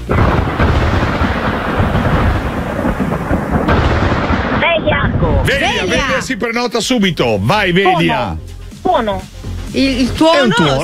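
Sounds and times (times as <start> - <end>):
thunder rumbling in a thunderstorm: 0.0 - 6.7
speech: 5.5 - 10.8.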